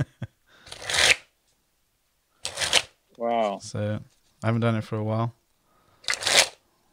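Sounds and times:
slippery deck of playing cards riffle-shuffled: 0.7s - 1.3s, 2.4s - 3.0s, 6.0s - 6.6s
speech: 3.2s - 5.4s.

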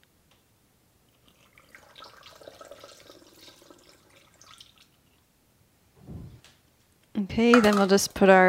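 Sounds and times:
mat-cleaning mixture poured through a funnel into a small spray bottle: 1.1s - 5.2s
low thump: 6.0s - 6.5s
speech: 7.2s - 8.4s.

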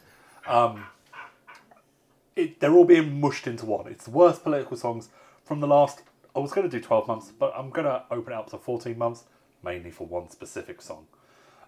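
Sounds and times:
speech: 0.5s - 1.0s, 2.4s - 11.2s
dog barking excitedly: 0.8s - 1.8s.

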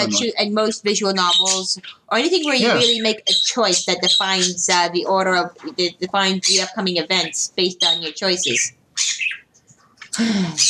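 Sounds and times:
speech: 0.0s - 9.3s, 10.2s - 10.6s
pet bird chirping indoors: 0.9s - 9.7s
pet bird squawking indoors: 1.1s - 4.8s, 5.6s - 9.5s.

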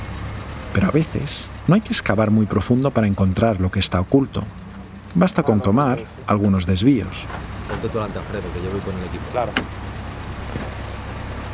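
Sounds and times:
car engine idling heard from inside the cabin in a car park: 0.0s - 11.5s
speech: 0.7s - 4.6s, 5.2s - 9.8s.

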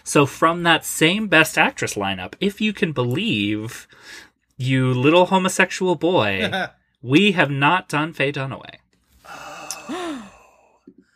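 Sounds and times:
speech: 0.1s - 10.2s
two people gasping sharply: 9.2s - 11.1s.

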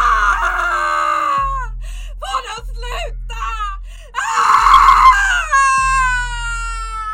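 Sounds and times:
woman screaming in agony on a cobblestone town square: 0.0s - 1.7s, 4.2s - 7.1s.

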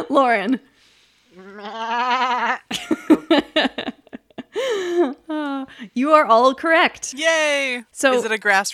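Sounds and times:
speech: 0.2s - 0.7s, 1.3s - 3.9s, 4.6s - 8.7s
goat bleating: 1.4s - 2.6s.

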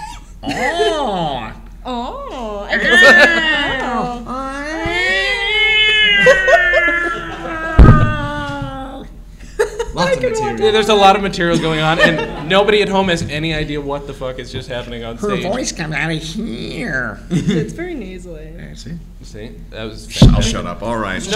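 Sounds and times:
speech: 0.4s - 1.2s, 2.8s - 4.2s, 10.0s - 21.3s
person imitating an alley cat with yowls and meows: 0.5s - 9.2s
laughter: 2.7s - 10.6s, 11.4s - 12.8s
brief thump: 7.8s - 8.4s.

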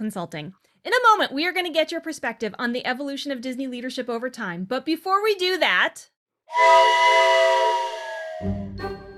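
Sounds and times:
speech: 0.0s - 7.8s, 8.4s - 8.9s
steam train whistle: 6.5s - 9.0s.

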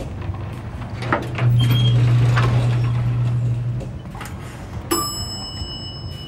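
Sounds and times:
sliding lift door opening: 0.0s - 4.9s
lift motor hum: 0.0s - 6.2s
bright lift chime: 4.9s - 6.2s.

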